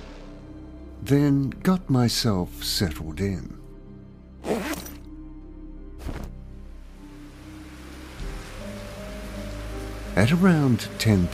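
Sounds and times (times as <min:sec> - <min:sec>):
speech: 0:01.0 - 0:03.6, 0:10.2 - 0:11.3
soft steady rain falling: 0:06.1 - 0:11.3.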